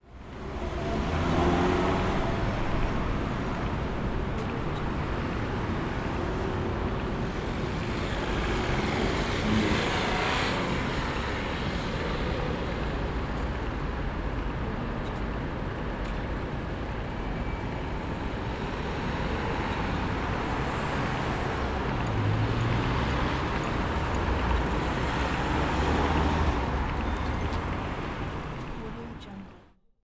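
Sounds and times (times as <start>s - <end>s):
traffic: 0.0s - 29.8s.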